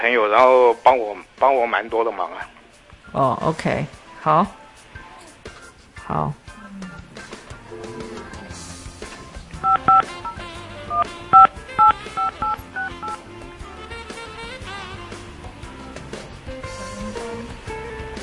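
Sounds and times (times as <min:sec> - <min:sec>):
speech: 0:00.0 - 0:04.6, 0:06.1 - 0:06.4
phone keypad beeps dialing a number: 0:09.6 - 0:13.2
telephone electronic tones and hum: 0:11.4 - 0:13.2.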